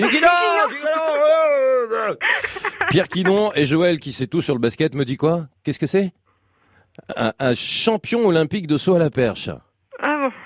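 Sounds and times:
laughter: 0.0 - 1.0, 2.2 - 3.6
person letting out a long strained shout: 0.0 - 2.2
speech: 2.9 - 6.2, 7.0 - 9.7.

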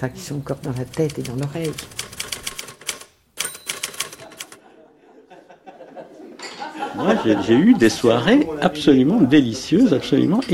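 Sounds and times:
speech: 0.0 - 2.1, 7.0 - 10.5
old Remington typewriter keys clacking: 0.8 - 4.6
laughter: 4.2 - 10.0.

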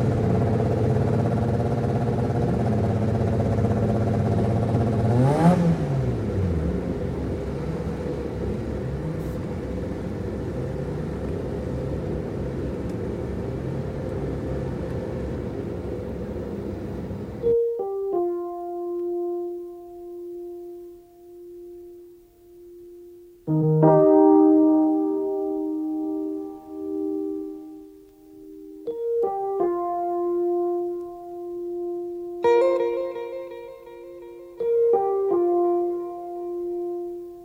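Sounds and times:
naturally aspirated engine revving: 0.0 - 17.4
clean tones: 0.0 - 37.4.

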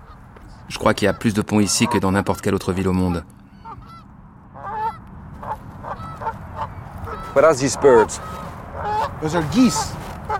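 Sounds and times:
low rumble: 0.0 - 10.3
wild geese honking: 0.0 - 10.3
speech: 0.7 - 3.4, 7.4 - 8.4, 9.2 - 10.0.

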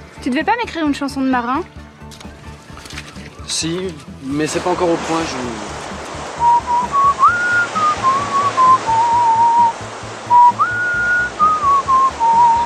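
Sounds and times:
speech: 0.2 - 2.2, 3.5 - 5.7
constant rushing noise: 2.2 - 12.6
person whistling a wandering melody: 6.4 - 12.6.

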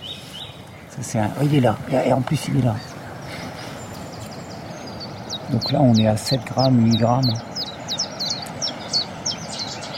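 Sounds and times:
Cetti's warbler singing: 0.0 - 9.9
speech: 1.0 - 3.0, 5.5 - 7.5.

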